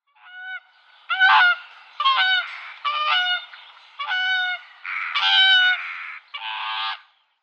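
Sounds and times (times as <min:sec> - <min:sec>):
whooper swan Cygnus cygnus calling: 0:00.1 - 0:07.1.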